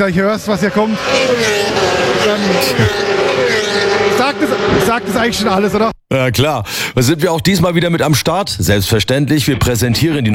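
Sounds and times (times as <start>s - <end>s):
speech: 0.0s - 3.2s, 4.2s - 10.3s
motorcycles racing past: 0.0s - 5.9s.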